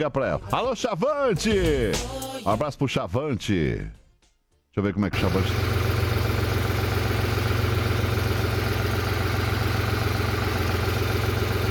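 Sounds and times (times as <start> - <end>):
speech: 0.0 - 4.0, 4.8 - 5.8
broadband road and mechanical noise: 5.2 - 11.6
truck engine drone inside a truck cab: 5.2 - 11.6.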